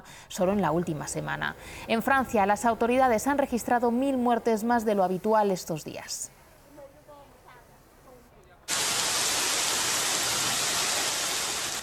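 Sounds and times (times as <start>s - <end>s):
speech: 0.3s - 6.4s
heavy rain roaring from a sudden afternoon downpour in Haro, La Rioja: 8.7s - 11.8s.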